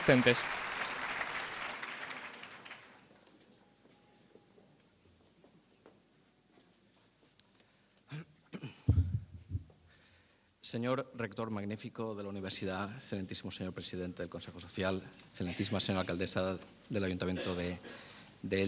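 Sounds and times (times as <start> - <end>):
speech: 0.0 - 0.6, 10.8 - 18.6
audience applause for award recipients: 0.0 - 3.1.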